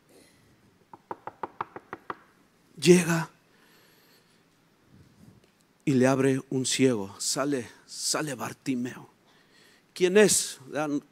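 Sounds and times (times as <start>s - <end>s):
knocking on a door: 0.9s - 2.3s
speech: 2.8s - 3.3s, 5.9s - 9.1s, 10.0s - 11.1s.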